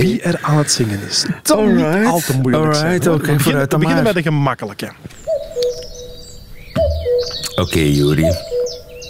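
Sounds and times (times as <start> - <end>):
speech: 0.1 - 5.2, 7.6 - 8.5
small birds chirping: 3.7 - 9.0
common cuckoo giving its two-note falling cuck-oo call: 5.1 - 9.0.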